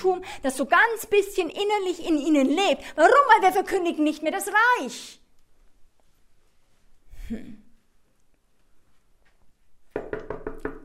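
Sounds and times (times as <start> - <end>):
speech: 0.0 - 5.2, 7.3 - 7.6
loud knocking on a hard surface: 9.9 - 10.8.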